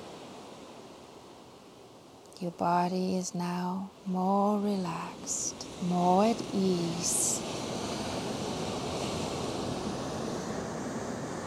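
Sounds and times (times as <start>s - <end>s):
calming ocean surf: 0.0s - 2.2s, 4.8s - 11.4s
speech: 2.4s - 7.9s.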